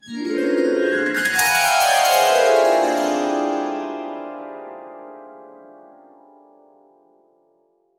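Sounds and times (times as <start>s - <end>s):
subtle harp glissandos: 0.1s - 5.2s.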